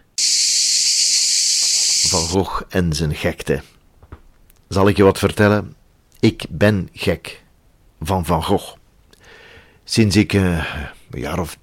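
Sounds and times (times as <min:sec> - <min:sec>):
cicada buzzing: 0:00.0 - 0:02.5
speech: 0:02.1 - 0:03.8, 0:04.7 - 0:07.4, 0:08.0 - 0:08.8, 0:09.9 - 0:11.6.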